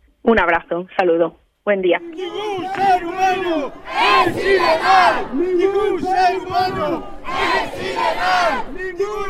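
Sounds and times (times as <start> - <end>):
speech: 0.3 - 9.2
large protest crowd chanting slogans at a demonstration in a Spanish city: 2.0 - 9.2.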